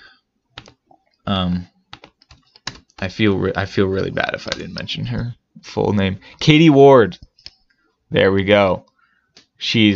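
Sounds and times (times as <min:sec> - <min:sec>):
typing on a computer keyboard: 0:00.6 - 0:00.8, 0:01.9 - 0:03.1
speech: 0:01.3 - 0:01.8, 0:03.0 - 0:07.3, 0:08.1 - 0:08.9, 0:09.6 - 0:09.9.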